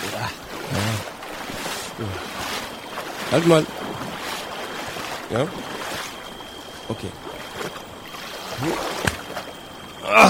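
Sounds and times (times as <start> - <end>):
dirty water sloshing and splashing as someone wades chest-deep toward a boat: 0.0 - 10.2
speech: 3.3 - 3.8, 5.3 - 5.9, 6.9 - 7.3, 8.6 - 9.0, 10.0 - 10.2.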